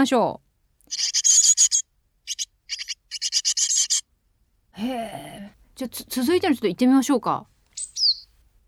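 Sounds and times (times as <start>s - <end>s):
speech: 0.0s - 1.2s, 4.8s - 7.5s
hungry Japanese tit chick begging calls after hatching: 0.9s - 4.1s, 7.8s - 8.3s.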